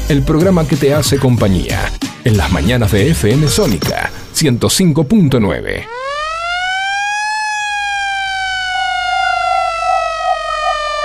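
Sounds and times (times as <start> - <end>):
speech: 0.1 - 6.1
siren wailing: 5.8 - 11.0.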